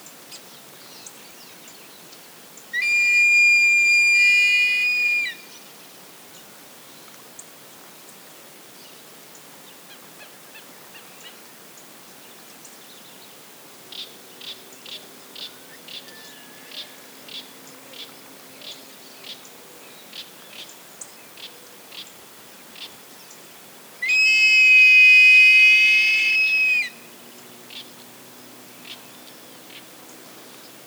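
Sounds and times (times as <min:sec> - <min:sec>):
Buteogallus urubitinga great black hawk calling: 0:02.8 - 0:05.4, 0:24.0 - 0:27.0.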